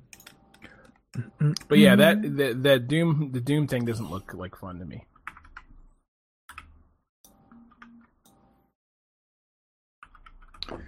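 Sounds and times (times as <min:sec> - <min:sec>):
clicky computer keyboard keystrokes: 0:00.0 - 0:01.0, 0:05.2 - 0:05.8, 0:06.5 - 0:06.8, 0:10.0 - 0:10.8
speech: 0:01.2 - 0:05.1.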